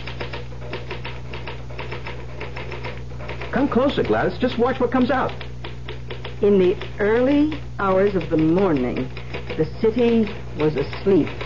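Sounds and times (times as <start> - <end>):
low constant hum: 0.0 - 11.4
mechanical typewriter typing: 0.0 - 11.4
speech: 3.5 - 5.4, 6.4 - 11.4.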